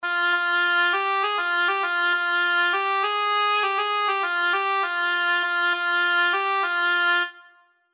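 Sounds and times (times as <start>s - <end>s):
oboe: 0.0s - 7.8s.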